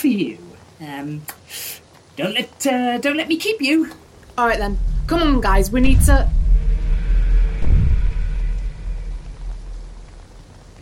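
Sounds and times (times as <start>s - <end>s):
speech: 0.0s - 6.4s
deep low thunder rumbling: 4.2s - 10.7s.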